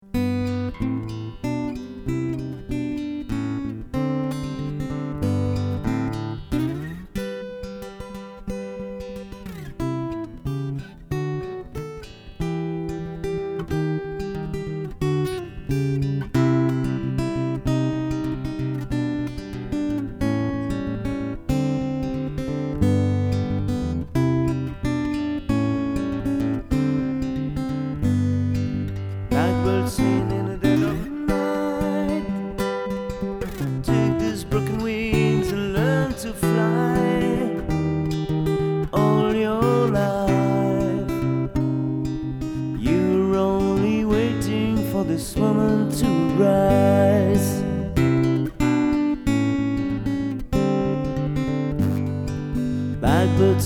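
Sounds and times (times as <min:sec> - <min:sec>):
guitar: 0:00.0 - 0:53.6
person singing solo: 0:29.3 - 0:41.8, 0:42.6 - 0:48.3, 0:53.0 - 0:53.6.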